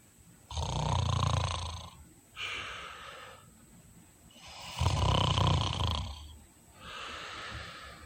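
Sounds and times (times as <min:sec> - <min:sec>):
man snoring while asleep: 0:00.5 - 0:02.0, 0:04.4 - 0:06.3.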